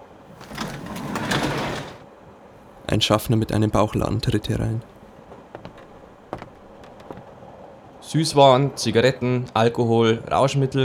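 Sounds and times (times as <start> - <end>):
train compartment sliding door rolling open: 0.3 - 2.0
speech: 2.9 - 5.0, 8.1 - 10.8.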